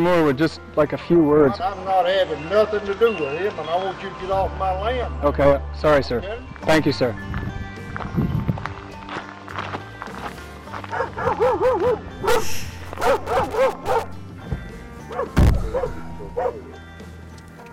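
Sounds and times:
speech: 0.0s - 7.4s, 8.1s - 8.4s, 11.4s - 13.8s
footsteps: 7.3s - 15.9s
dog barking in short sharp bursts: 10.9s - 14.2s, 15.1s - 16.7s
heavy thud: 15.4s - 16.0s.

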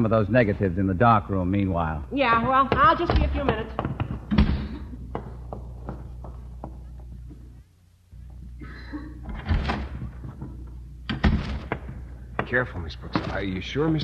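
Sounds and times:
speech: 0.0s - 4.0s, 12.5s - 14.0s
lighter knocks and rattles: 2.2s - 7.6s, 9.2s - 14.0s
door slamming shut with a heavy bang: 2.8s - 4.9s, 9.2s - 10.5s, 11.1s - 14.0s.

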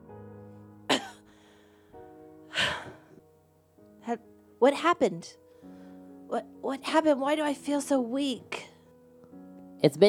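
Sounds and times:
low steady tonal backdrop: 0.0s - 10.0s
raspy coughs: 0.9s - 1.2s
speech: 4.1s - 5.4s, 6.3s - 8.6s, 9.8s - 10.0s.

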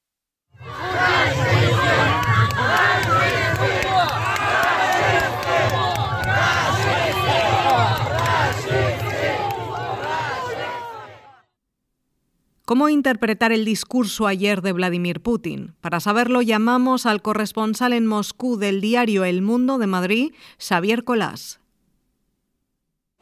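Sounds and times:
crowd of protesters shouting at an ambassador: 0.6s - 11.5s
speech: 12.9s - 21.6s.

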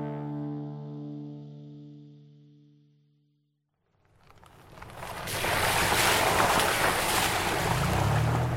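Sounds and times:
ocean water splashing: 4.0s - 8.5s
boat engine motoring over ocean waves: 4.5s - 8.5s.

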